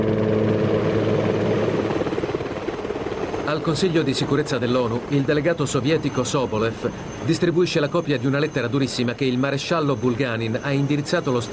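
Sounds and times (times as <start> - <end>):
British military helicopter blades thumping: 0.0 - 3.5
British military helicopter engine and rotor drone: 0.0 - 11.5
speech: 3.5 - 11.5.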